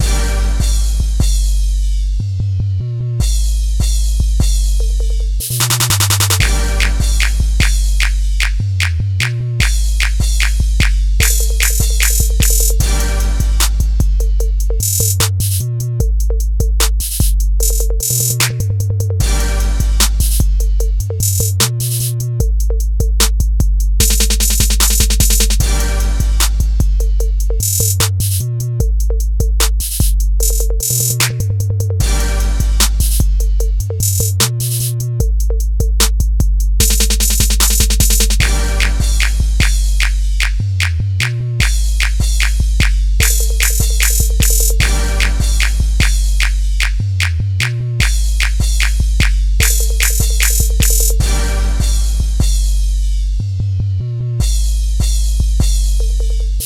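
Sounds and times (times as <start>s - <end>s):
trap 808 drum kit: 0.0s - 2.5s, 3.2s - 53.7s, 54.4s - 56.6s.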